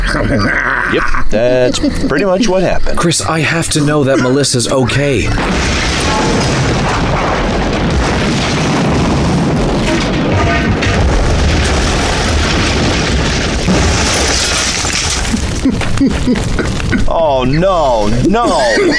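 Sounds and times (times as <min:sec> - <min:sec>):
laughter: 0:00.0 - 0:03.0, 0:15.3 - 0:18.9
speech: 0:00.1 - 0:07.2, 0:16.0 - 0:16.7, 0:17.4 - 0:18.9
grinding, rattling wreckage noise: 0:01.3 - 0:18.9
metal pipe smashing through a truck's engine block: 0:05.2 - 0:16.0.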